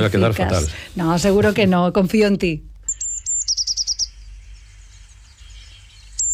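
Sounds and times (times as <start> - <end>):
speech: 0.0 - 2.7
Eurasian blue tit calling: 2.9 - 6.3.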